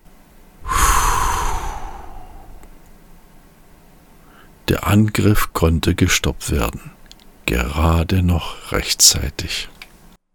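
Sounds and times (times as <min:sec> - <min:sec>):
long breathy exhale: 0:00.6 - 0:02.7
speech: 0:04.7 - 0:09.8.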